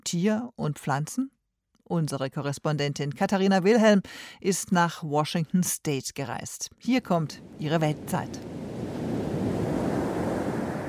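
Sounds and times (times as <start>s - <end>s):
speech: 0.1s - 8.6s
wind: 6.9s - 10.8s
heavy ocean surf rolling onto a beach in drizzle and rain: 7.4s - 10.8s.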